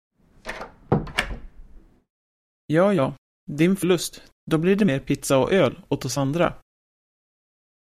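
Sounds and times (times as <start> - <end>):
wooden door pulled shut: 0.3 - 2.0
door latch rattling: 0.4 - 1.8
speech: 2.7 - 6.6.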